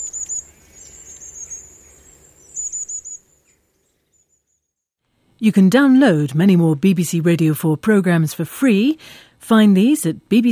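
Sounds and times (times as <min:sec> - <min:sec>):
long-tailed tit calls: 0:00.0 - 0:04.5
speech: 0:05.4 - 0:10.4.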